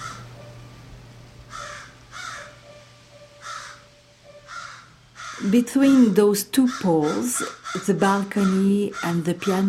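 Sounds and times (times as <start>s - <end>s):
raven cawing: 0.0s - 0.2s, 1.5s - 2.6s, 3.4s - 9.6s
steady low hum: 0.0s - 9.6s
speech: 5.4s - 9.6s.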